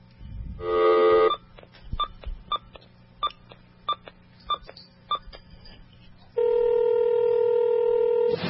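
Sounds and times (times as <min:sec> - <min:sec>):
dial tone: 0:00.6 - 0:01.4, 0:06.4 - 0:08.3.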